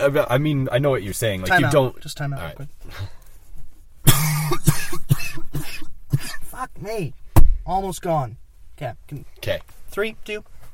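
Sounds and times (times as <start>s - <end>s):
speech: 0.0s - 3.2s, 6.6s - 10.5s
person coughing harshly in a coughing fit: 4.1s - 6.6s.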